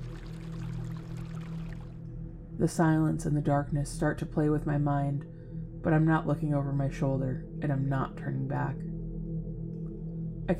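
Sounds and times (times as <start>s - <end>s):
water rippling and burbling like a stream in the woods: 0.0s - 2.0s
low droning hum: 0.0s - 10.5s
speech: 2.6s - 8.9s.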